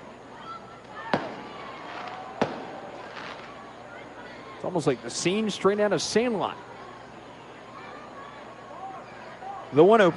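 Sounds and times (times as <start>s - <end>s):
steady hum of outdoor noise: 0.0s - 10.1s
sharp fireworks bangs during a baseball game: 1.1s - 3.7s
speech: 4.6s - 6.7s, 9.7s - 10.1s.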